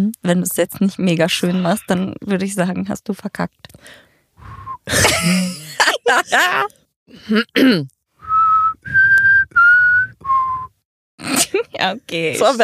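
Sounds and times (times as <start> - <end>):
speech: 0.0 - 4.1, 4.8 - 8.0, 11.6 - 12.6
breathy noise: 3.8 - 4.9
person whistling a short descending tune: 4.4 - 4.9, 8.2 - 10.8
throat-clearing coughs: 4.9 - 6.4, 7.2 - 7.9, 11.2 - 11.6
laughter: 4.9 - 6.7.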